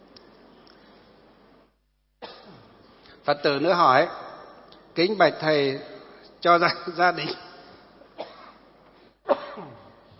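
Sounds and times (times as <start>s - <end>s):
speech: 3.2s - 4.2s, 5.0s - 7.4s
Buddhist lay follower coughing: 8.2s - 10.0s.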